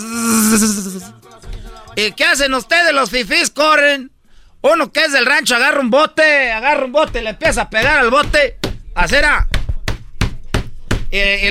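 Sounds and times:
swarm of bees buzzing in flight: 0:00.0 - 0:01.0
speech: 0:00.5 - 0:01.2, 0:02.0 - 0:09.5, 0:11.1 - 0:11.4.

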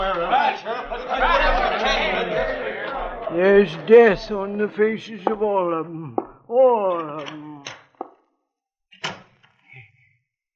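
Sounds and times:
speech: 0:00.0 - 0:02.7, 0:03.3 - 0:07.5
laughter: 0:00.0 - 0:07.7
back door opening and shutting: 0:09.0 - 0:09.6.

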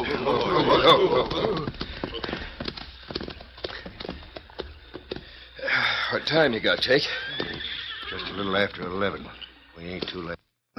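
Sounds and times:
horses' hooves clip-clopping at a trot: 0:00.0 - 0:05.3, 0:06.2 - 0:09.3
speech: 0:00.8 - 0:01.8, 0:06.2 - 0:07.2, 0:08.4 - 0:10.4.

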